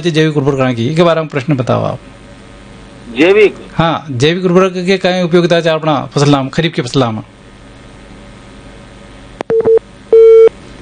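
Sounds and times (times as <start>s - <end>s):
speech: 0.0s - 2.2s, 3.1s - 7.4s
telephone busy tone after a radio listener's phone call is cut off: 9.5s - 10.8s.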